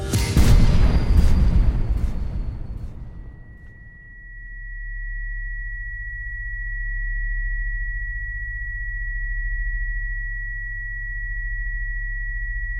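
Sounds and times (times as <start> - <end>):
firecracker blast echoing inside a tunnel: 0.2 - 4.1
low droning rumble: 0.4 - 4.2
high-pitched ringing tone: 3.2 - 12.7.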